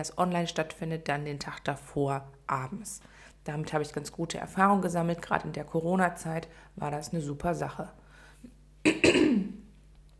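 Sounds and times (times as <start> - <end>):
speech: 0.0 - 8.0, 8.8 - 9.5
person clearing throat: 8.9 - 9.7.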